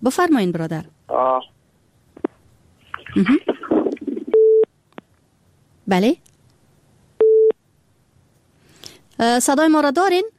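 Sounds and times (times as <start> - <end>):
speech: 0.0 - 1.6, 3.1 - 3.5, 5.9 - 6.3, 9.2 - 10.3
telephone busy tone beep after a call is cut off: 4.3 - 4.7, 7.2 - 7.6.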